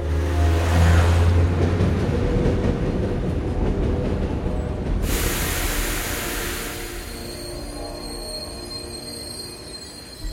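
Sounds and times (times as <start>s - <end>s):
train rumbling and clattering on rails: 0.0s - 10.3s.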